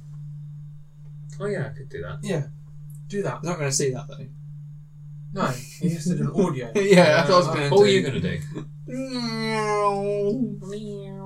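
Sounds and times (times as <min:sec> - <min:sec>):
speech: 0:01.4 - 0:04.4, 0:05.3 - 0:11.1
laughter: 0:05.7 - 0:08.6
person imitating a cat meowing: 0:08.9 - 0:11.2.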